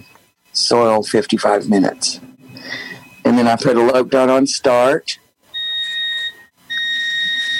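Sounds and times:
washing machine beeping because its door is open: 0.0 - 4.1, 5.6 - 7.5
speech: 0.6 - 2.8, 3.4 - 5.2.

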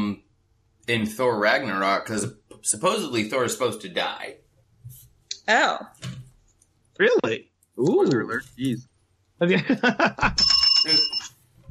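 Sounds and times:
speech: 0.9 - 4.4, 5.5 - 6.2, 7.0 - 11.2
laughter: 9.4 - 10.4
bright bicycle-style bell ringing: 10.4 - 11.3.

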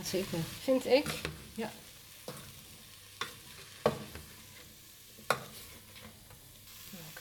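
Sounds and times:
speech: 0.0 - 1.9
onion and garlic sizzling and frying in a pan on turned-up heat: 0.0 - 7.1
utensil scraping and clacking while stirring vegetables: 0.9 - 6.4.

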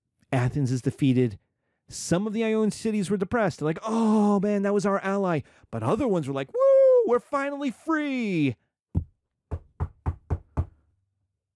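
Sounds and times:
speech: 0.3 - 8.6
firm knocks on a door: 9.0 - 10.8.

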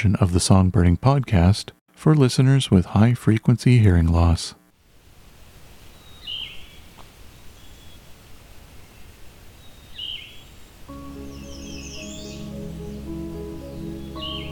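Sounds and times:
speech: 0.0 - 4.6
Yellow-throated Vireo song heard on a morning forest hike in Halton, Ontario: 10.9 - 14.5
music: 10.9 - 14.5.

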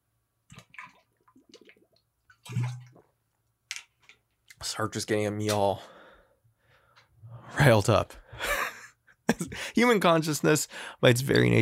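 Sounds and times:
sipping and swallowing water with small wet gulps: 0.5 - 3.3
speech: 2.5 - 2.8, 4.7 - 6.0, 7.6 - 8.2, 9.8 - 11.6.

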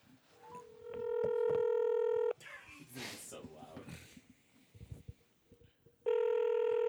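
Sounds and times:
phone call ringback tones on speakerphone: 0.5 - 2.3, 6.1 - 6.8.

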